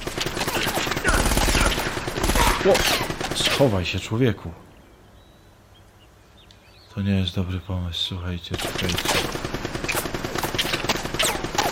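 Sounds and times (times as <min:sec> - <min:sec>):
gunfire in bursts: 0:00.0 - 0:03.8, 0:08.5 - 0:11.7
speech: 0:02.6 - 0:04.7, 0:07.0 - 0:09.4.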